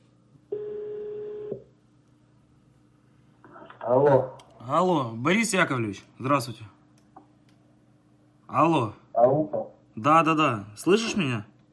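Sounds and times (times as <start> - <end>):
faint low hum: 0.0 - 11.7
telephone line tone while a number is dialed with caller ID: 0.5 - 1.6
speech: 3.9 - 6.8, 8.5 - 11.5.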